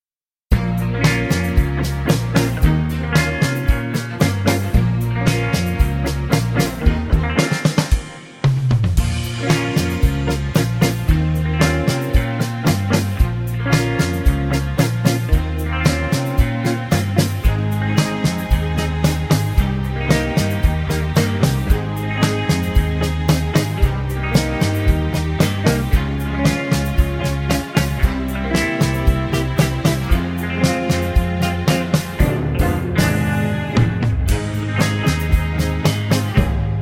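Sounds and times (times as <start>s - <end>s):
backing track in A flat without backing vocals: 0.5s - 36.7s.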